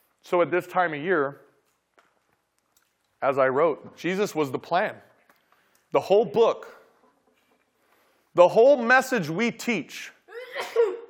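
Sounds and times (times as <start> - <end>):
speech: 0.3 - 1.4, 3.2 - 5.1, 5.9 - 6.8, 8.4 - 10.8
person in the audience sneezing: 10.3 - 11.0.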